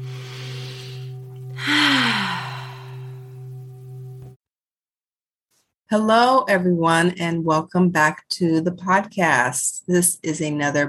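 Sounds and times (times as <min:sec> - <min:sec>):
deep breath in: 0:00.0 - 0:03.2
steady low electrical hum: 0:00.0 - 0:04.4
speech: 0:05.9 - 0:10.8.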